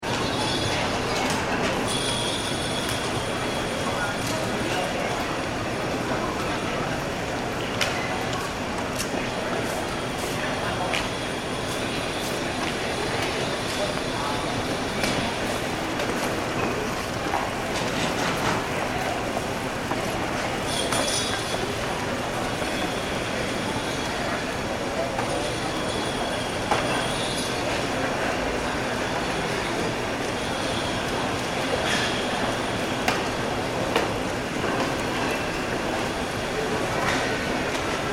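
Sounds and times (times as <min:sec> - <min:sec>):
airport check-in hall ambience at John F. Kennedy Airport: 0:00.0 - 0:38.1.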